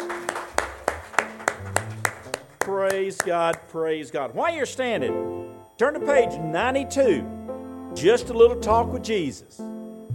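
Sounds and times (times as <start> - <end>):
congregation clapping hands during a church service: 0.0 - 3.8
speech: 2.7 - 7.4, 8.0 - 9.7.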